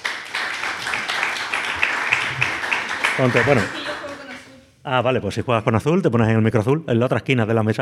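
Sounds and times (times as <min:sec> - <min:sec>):
audience at a games festival in Córdoba applauding: 0:00.0 - 0:04.5
speech: 0:03.2 - 0:03.8, 0:04.8 - 0:07.8.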